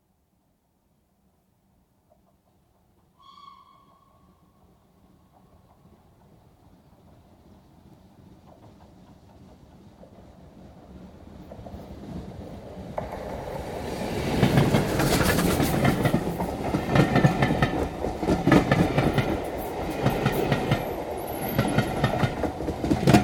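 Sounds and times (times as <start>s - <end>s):
steam train passing at high speed: 2.4s - 23.2s
steam train whistle: 3.2s - 5.0s.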